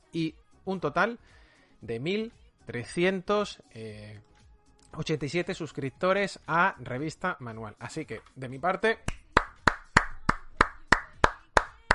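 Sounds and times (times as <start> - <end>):
speech: 0.1 - 4.3, 4.9 - 9.2
hand clapping: 9.0 - 11.9.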